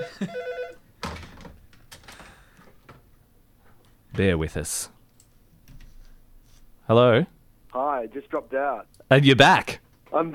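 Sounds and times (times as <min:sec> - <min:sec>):
speech: 0:00.0 - 0:00.4, 0:04.2 - 0:05.0, 0:06.9 - 0:10.3
telephone ringing with an incoming call: 0:00.0 - 0:00.8.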